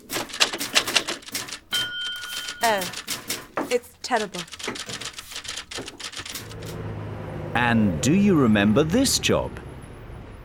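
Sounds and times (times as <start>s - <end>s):
typewriters clattering in a big company's typing office: 0.0s - 6.8s
speech: 2.6s - 3.0s, 3.7s - 5.1s, 5.8s - 6.0s, 7.6s - 9.6s.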